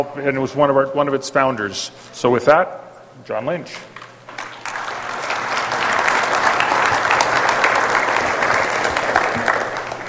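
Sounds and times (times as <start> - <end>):
speech: 0.0 - 4.0
audience applause with many hands clapping: 4.3 - 10.0.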